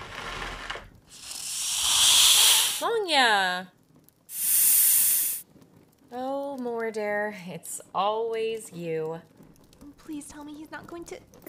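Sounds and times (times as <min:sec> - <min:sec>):
snake hissing: 0:01.1 - 0:02.9, 0:04.3 - 0:05.4
speech: 0:02.8 - 0:03.8, 0:06.1 - 0:09.5, 0:10.1 - 0:11.4.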